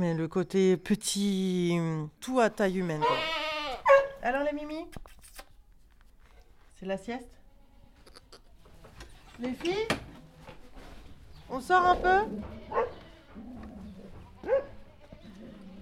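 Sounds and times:
speech: 0.0 - 3.5, 4.2 - 5.2, 6.8 - 7.4, 9.4 - 10.1, 11.5 - 13.6
goats bleating: 2.9 - 3.9, 7.5 - 8.5, 12.0 - 15.8
Border collie herding dogs barking: 3.8 - 4.2, 12.6 - 14.9.

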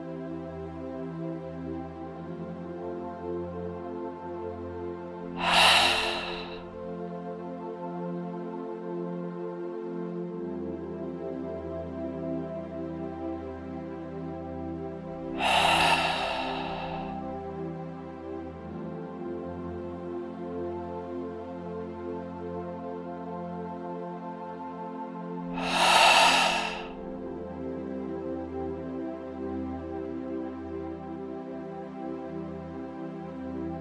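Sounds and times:
soft steady tonal music bed: 0.0 - 33.8
deep breathing in through the nose and out through the mouth: 5.3 - 6.7, 15.3 - 17.4, 25.6 - 27.0.

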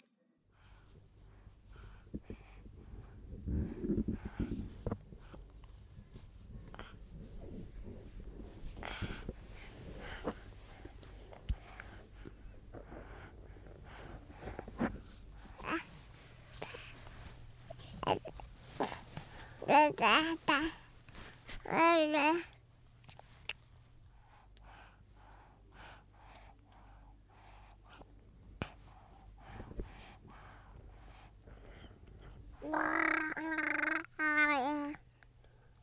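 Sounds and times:
quiet breathing: 0.4 - 21.6, 22.5 - 32.6, 34.9 - 35.8
baby babbling softly: 15.6 - 15.9, 17.8 - 19.0, 19.6 - 20.8, 21.6 - 22.5, 32.6 - 35.0
speech: 19.7 - 20.8, 21.7 - 22.5.

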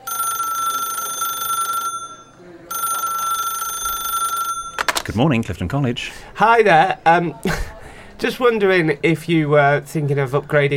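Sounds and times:
telephone ringing with a shrill electronic trill: 0.0 - 5.1
speech: 5.1 - 10.7.

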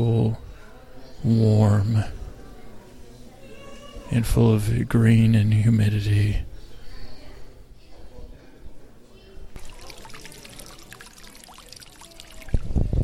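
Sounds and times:
speech: 0.0 - 0.5, 1.2 - 2.2, 4.1 - 6.5
soft murmur of crowd chatter: 0.0 - 13.0
water trickling and splashing from an indoor fountain at the San Francisco Conservatory of Flowers: 9.6 - 13.0.

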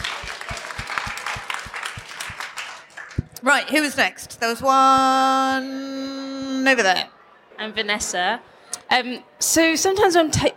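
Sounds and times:
crowd applauding: 0.0 - 3.4
speech: 3.4 - 10.5.

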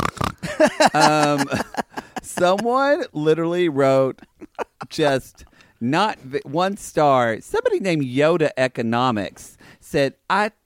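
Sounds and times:
person imitating pig grunts and squeal: 0.0 - 1.5
laughter: 0.4 - 3.1, 4.1 - 5.1
speech: 0.6 - 1.7, 2.4 - 4.3, 4.9 - 10.6.

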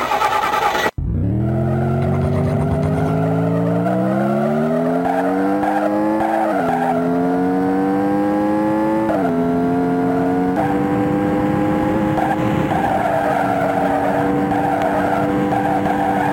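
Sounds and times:
video game tire skids and squeals: 0.0 - 7.4, 9.0 - 9.5, 12.0 - 16.3
synthesized race car engines in a racing video game: 0.0 - 16.3.

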